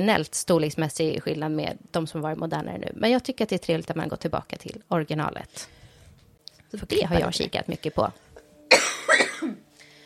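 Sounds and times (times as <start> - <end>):
speech: 0.0 - 5.8, 6.7 - 8.3
man with a cold coughing harshly: 8.7 - 9.6.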